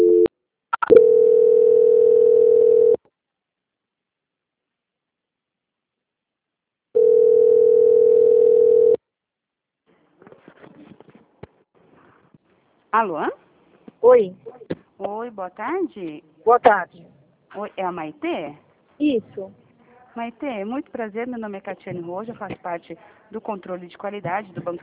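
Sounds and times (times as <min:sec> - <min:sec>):
telephone tone during a call transfer: 0:00.0 - 0:03.0, 0:07.0 - 0:09.0
speech: 0:13.0 - 0:13.4, 0:14.0 - 0:19.6, 0:20.2 - 0:24.8.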